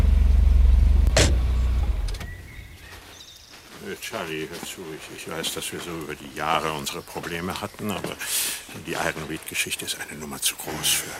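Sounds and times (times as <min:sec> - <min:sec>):
approaching car engine humming with a deep rumble: 0:00.0 - 0:02.7
speech: 0:04.1 - 0:11.1.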